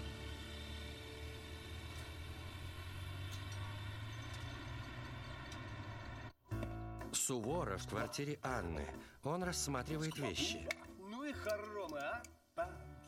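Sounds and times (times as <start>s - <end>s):
car engine rumbling as car rolls in through gates: 0.0s - 6.4s
speech: 7.2s - 12.8s.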